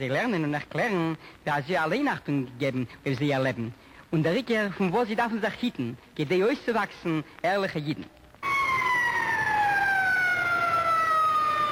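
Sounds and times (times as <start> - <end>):
speech: 0.0 - 8.2
siren wailing: 8.4 - 11.7.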